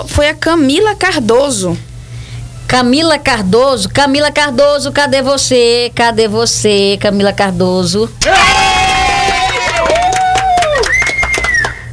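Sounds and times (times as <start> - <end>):
speech: 0.0 - 1.9, 2.7 - 8.7
crowd shouting and cheering: 8.2 - 11.9
scattered sharp claps: 8.2 - 11.9.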